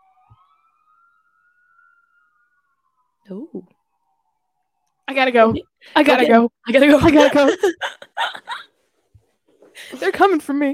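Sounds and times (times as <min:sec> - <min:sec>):
distant siren wailing: 0:00.0 - 0:06.3
speech: 0:03.3 - 0:03.8, 0:05.1 - 0:08.5, 0:09.8 - 0:10.7.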